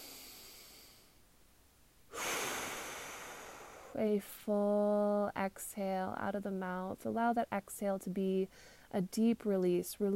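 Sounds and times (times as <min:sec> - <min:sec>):
deep inhale through the nostrils during guided breathing meditation: 0:00.0 - 0:01.2, 0:02.1 - 0:04.0
speech: 0:03.9 - 0:10.1.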